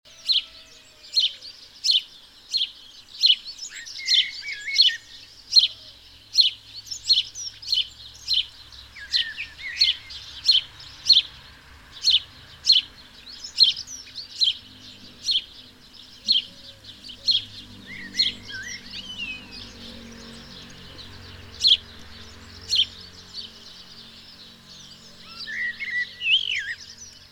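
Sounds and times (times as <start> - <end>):
house sparrow (Passer domesticus) chirping: 0.1 - 27.3.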